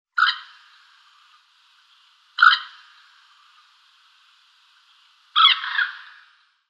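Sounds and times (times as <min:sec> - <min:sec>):
common moorhen Gallinula chloropus calling: 0:00.1 - 0:01.4, 0:02.3 - 0:03.8, 0:05.3 - 0:06.3.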